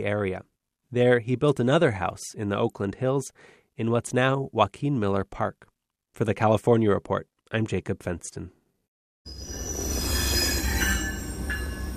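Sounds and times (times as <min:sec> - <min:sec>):
speech: 0:00.0 - 0:08.6
train rolling along the rails with a deep rumble: 0:09.3 - 0:11.9.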